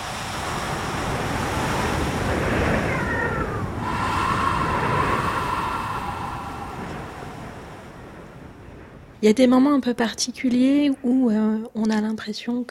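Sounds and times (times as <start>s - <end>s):
ocean waves washing up a beach: 0.0s - 9.1s
wind noise: 0.0s - 11.4s
speech: 9.2s - 12.6s.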